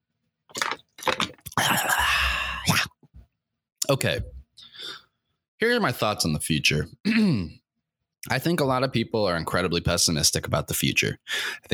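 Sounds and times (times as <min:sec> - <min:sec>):
plastic bottle being handled and opened: 0:00.5 - 0:01.6
person drinking water, swallowing noisily: 0:00.5 - 0:02.8
speech: 0:03.9 - 0:04.4, 0:05.6 - 0:07.6, 0:08.2 - 0:11.7.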